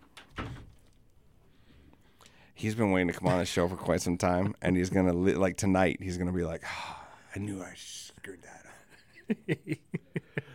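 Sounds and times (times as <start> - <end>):
door swinging shut with a scrape and thud: 0.0 - 0.9
speech: 2.6 - 8.7, 9.3 - 10.0
laughter: 8.8 - 10.5.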